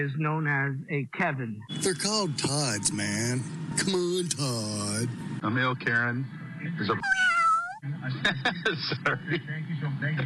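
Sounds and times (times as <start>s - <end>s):
speech: 0.0s - 10.2s
cat meowing: 7.0s - 7.8s
laughter: 7.9s - 9.6s.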